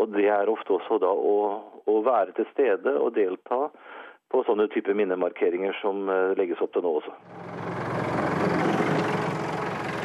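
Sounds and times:
speech: 0.0s - 7.8s
heavy tractor engine running: 7.3s - 10.0s.

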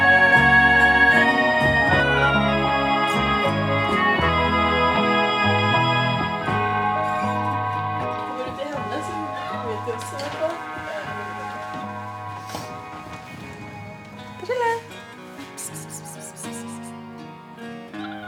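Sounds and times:
dense steady tonal background: 0.0s - 17.0s
cat meowing: 15.6s - 16.9s.

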